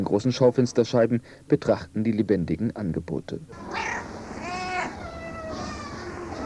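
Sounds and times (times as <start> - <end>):
speech: 0.0 - 4.1
several cats meowing in an animal shelter cat house corridor: 3.5 - 6.4.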